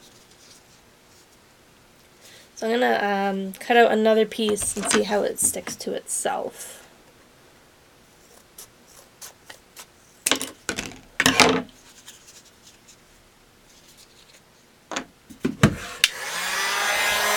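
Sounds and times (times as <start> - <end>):
rubbing and handling noises: 0.0 - 1.5, 4.3 - 6.2, 8.1 - 14.8
speech: 2.6 - 6.8
heat gun blowing hot air onto a cut piece of material: 15.8 - 17.3.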